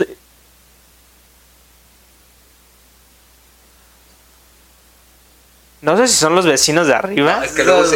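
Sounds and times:
air conditioner running: 0:00.0 - 0:07.9
speech: 0:05.8 - 0:07.9.

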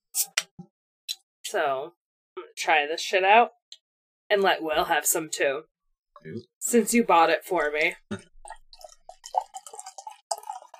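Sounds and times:
speech: 0:01.5 - 0:03.6, 0:04.3 - 0:08.6
cider pouring into a glass: 0:08.5 - 0:10.7.

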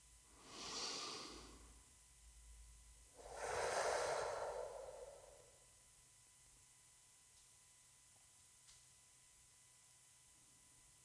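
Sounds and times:
slow deliberate breathing in and out during a relaxation exercise: 0:00.3 - 0:01.8, 0:03.2 - 0:05.8.

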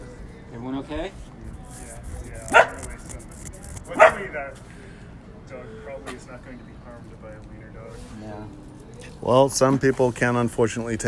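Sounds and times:
speech: 0:00.6 - 0:01.3, 0:04.4 - 0:04.7, 0:05.5 - 0:11.0
small dog barking: 0:02.5 - 0:02.9, 0:03.9 - 0:04.3.

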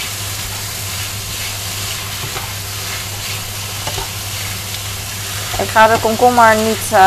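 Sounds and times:
fettuccine noodles frying and sizzling in a hot pan: 0:00.0 - 0:07.0
low hum: 0:00.0 - 0:07.0
soft scraping clicks from stirring noodles in a pan: 0:01.3 - 0:06.9
speech: 0:05.6 - 0:07.0.

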